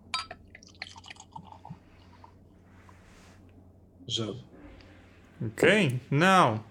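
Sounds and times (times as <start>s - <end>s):
beer pouring into a glass: 0.2s - 2.1s
speech: 4.1s - 4.5s, 5.4s - 6.7s.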